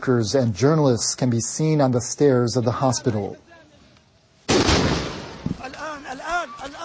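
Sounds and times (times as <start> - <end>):
speech: 0.0 - 3.4
loud explosion from a second strike on a hospital: 4.5 - 5.6.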